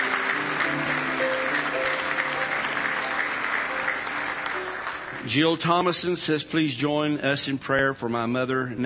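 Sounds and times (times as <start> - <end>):
audience applause from a large group: 0.0 - 6.2
speech: 5.3 - 8.8.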